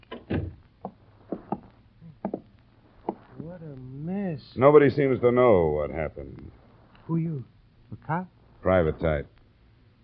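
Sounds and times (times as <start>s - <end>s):
door closing with a solid thump: 0.0s - 0.6s
speech: 4.6s - 9.4s.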